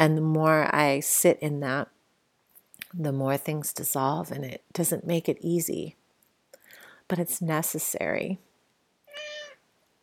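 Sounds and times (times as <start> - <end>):
speech: 0.0 - 2.0, 2.9 - 6.0, 7.1 - 8.5
cat meowing: 9.1 - 9.6.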